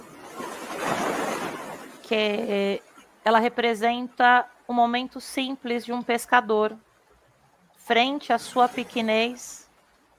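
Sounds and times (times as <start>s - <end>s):
ocean surf roaring: 0.0s - 3.0s, 8.3s - 9.5s
speech: 2.1s - 6.9s, 7.8s - 9.6s.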